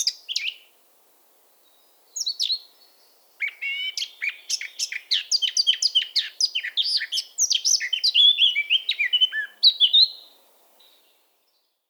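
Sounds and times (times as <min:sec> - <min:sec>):
Eurasian blackcap singing: 0:00.0 - 0:00.6, 0:03.4 - 0:10.2.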